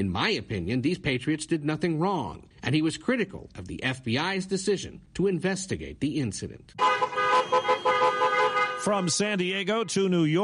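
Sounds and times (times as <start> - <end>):
speech: 0.0 - 7.2, 8.8 - 10.4
car horns honking from a caravan of vehicles in traffic: 6.8 - 10.2.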